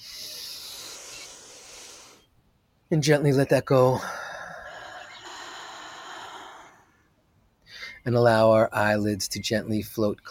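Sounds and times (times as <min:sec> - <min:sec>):
long slow deep breath in through the nose during a meditation: 0:00.0 - 0:02.3, 0:04.0 - 0:07.1
speech: 0:02.9 - 0:04.2, 0:08.0 - 0:10.2.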